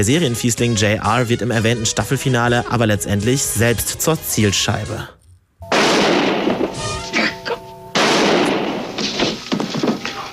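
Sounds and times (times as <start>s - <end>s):
speech: 0.0s - 5.2s
loud sharp gunshot-like bangs with roar: 5.7s - 6.8s, 8.0s - 9.4s.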